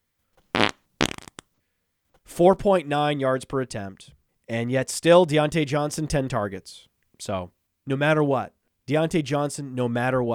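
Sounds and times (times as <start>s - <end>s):
loud buzzy sputtering fart: 0.5s - 1.4s
speech: 2.4s - 10.3s.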